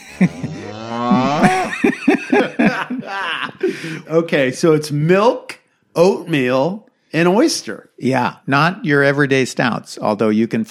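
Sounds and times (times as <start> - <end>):
laughter: 0.0 - 4.2
cow grunting: 0.3 - 1.7
cow mooing: 0.4 - 1.5
speech: 3.8 - 10.6.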